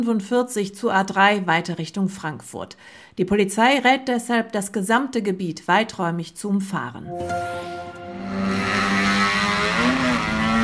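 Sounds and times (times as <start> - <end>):
speech: 0.0 - 8.6
motorcycle engine revving at full throttle: 8.2 - 10.6.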